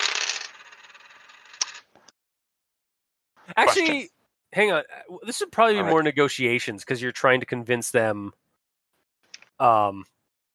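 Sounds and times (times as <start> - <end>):
three dice rolled, rattling and clattering: 0.0 - 1.8
speech: 3.5 - 8.4, 9.6 - 10.2.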